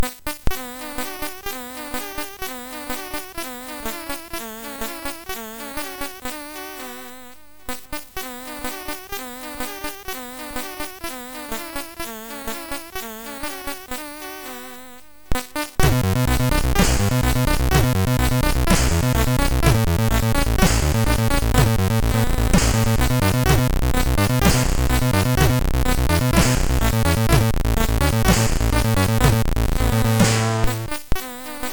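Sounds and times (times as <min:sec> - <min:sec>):
echo melody on MOS6581R3 SID chip: 0:15.8 - 0:31.0.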